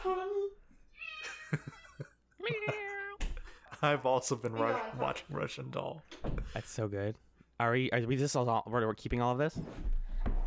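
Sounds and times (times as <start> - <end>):
speech: 0.0 - 0.3, 3.8 - 10.4
cat meowing: 0.9 - 1.6, 2.4 - 3.2.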